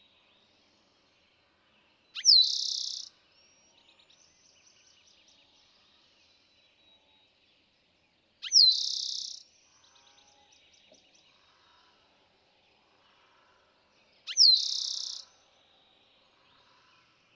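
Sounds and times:
faint chirps: 2.2s - 3.1s, 8.4s - 9.4s, 14.3s - 15.3s
Eastern towhee songs, sharp note then buzzing trill: 2.2s - 7.2s, 8.4s - 11.4s, 14.2s - 15.5s.

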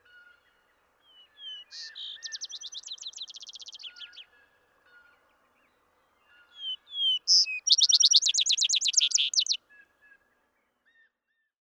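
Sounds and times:
vesper sparrow song trilled section: 1.1s - 4.3s, 6.5s - 9.6s.

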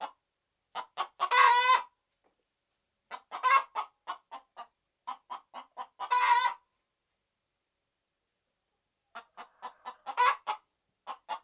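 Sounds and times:
red junglefowl clucking: 0.0s - 1.9s, 3.1s - 6.6s, 9.1s - 11.4s.

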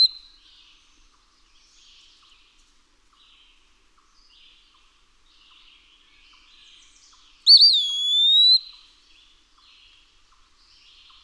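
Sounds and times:
Eastern wood-pewee whistled pee-a-wee call: 0.0s - 0.2s, 7.5s - 8.9s.

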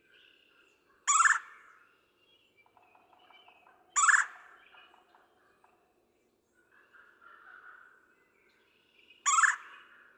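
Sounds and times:
Red-bellied woodpecker giving loud rolling churr calls: 1.1s - 1.5s, 4.0s - 4.4s, 9.3s - 9.7s.

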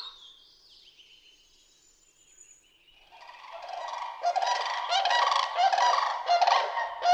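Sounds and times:
Common raven hoarse croaks: 3.1s - 7.1s.

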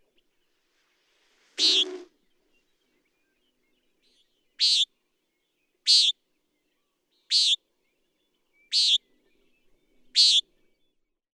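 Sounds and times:
common nighthawk giving nasal peent calls: 1.6s - 2.1s, 4.6s - 4.8s, 5.9s - 6.1s, 7.3s - 7.6s, 8.7s - 9.0s, 10.2s - 10.4s.

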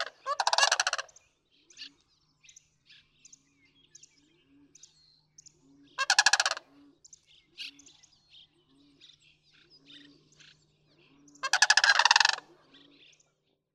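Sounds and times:
sandhill crane rolling rattling calls: 0.0s - 1.1s, 6.0s - 6.6s, 11.4s - 12.4s.

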